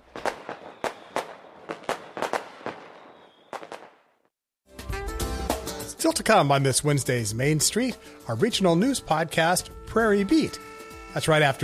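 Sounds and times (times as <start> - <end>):
fireworks popping and crackling: 0.0 - 4.2
speech: 6.0 - 11.6.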